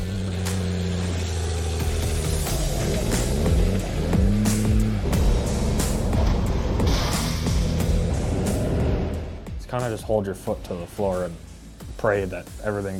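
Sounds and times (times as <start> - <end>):
heavy bus engines roaring and revving in a demolition derby: 0.0 - 9.4
metallic crashes of buses colliding: 5.0 - 9.5
speech: 9.8 - 12.9.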